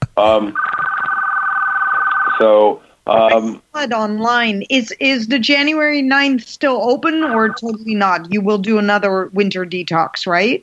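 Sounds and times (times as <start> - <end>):
speech: 0.2 - 0.7, 2.4 - 10.6
telephone on another line ringing with warbling electronic tone: 0.6 - 2.4, 7.0 - 7.8.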